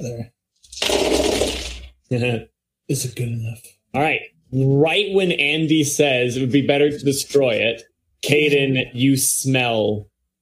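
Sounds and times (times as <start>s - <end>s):
speech: 0.0s - 1.2s, 2.1s - 10.1s
dice rattling across a hard table: 0.7s - 1.9s.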